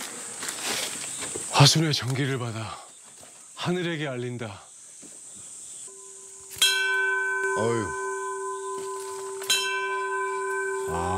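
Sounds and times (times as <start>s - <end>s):
speech: 1.6s - 2.8s, 3.6s - 4.7s, 7.6s - 8.0s, 10.9s - 11.1s
temple bell on Mudeungsan struck and ringing: 5.9s - 11.1s.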